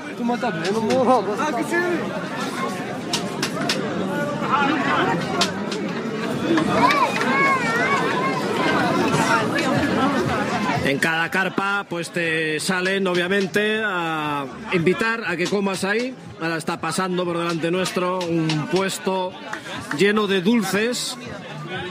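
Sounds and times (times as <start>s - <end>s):
dense crowd chatter in a busy town square with food stalls: 0.0s - 21.8s
speech: 0.2s - 2.5s, 3.6s - 5.7s, 6.4s - 8.2s, 9.4s - 21.8s.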